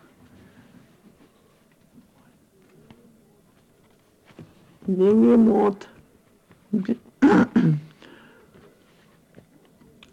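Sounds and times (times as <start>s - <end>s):
faint rustling: 0.0s - 7.2s, 7.9s - 10.1s
speech: 4.8s - 5.9s, 6.7s - 7.8s
gruff throat clearing: 7.2s - 8.0s.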